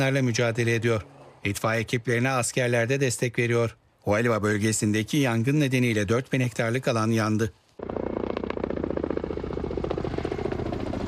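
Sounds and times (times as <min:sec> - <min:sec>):
speech: 0:00.0 - 0:08.0
helicopter rotors chopping over a wildfire in Serbia: 0:07.8 - 0:11.0.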